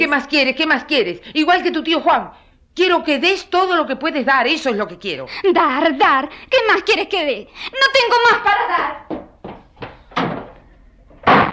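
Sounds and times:
speech: 0.0 - 9.2
door slammed shut during a family argument: 10.1 - 10.6.

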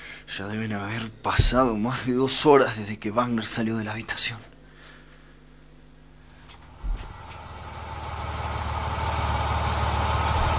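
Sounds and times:
speech: 0.4 - 4.5
car engine approaching and idling: 6.7 - 10.5.

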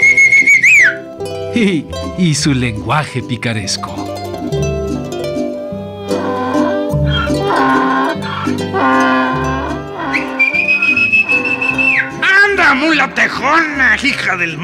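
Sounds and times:
muleteer's shrill whistle: 0.0 - 1.1, 10.1 - 12.2
music: 0.0 - 14.6
speech: 1.6 - 4.0, 12.9 - 14.6.

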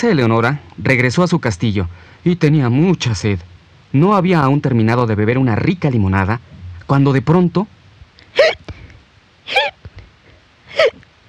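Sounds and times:
speech: 0.0 - 7.8, 8.4 - 8.8, 9.5 - 9.8, 10.8 - 11.0
hiccups: 8.3 - 8.7, 9.5 - 9.8.

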